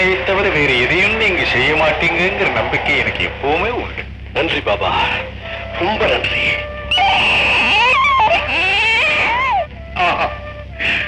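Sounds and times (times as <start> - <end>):
speech: 0.0 - 6.7
newborn baby crying: 6.9 - 9.7.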